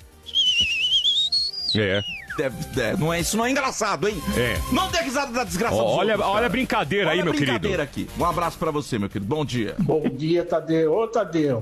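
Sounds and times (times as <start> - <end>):
high whistling sound effect of a rocket: 0.1 - 2.4
speech: 1.7 - 11.6.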